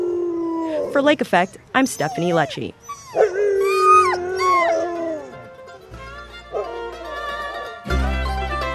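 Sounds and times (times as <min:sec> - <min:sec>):
pack of sled dogs howling and yipping: 0:00.0 - 0:05.5, 0:06.5 - 0:07.8
speech: 0:00.9 - 0:03.3.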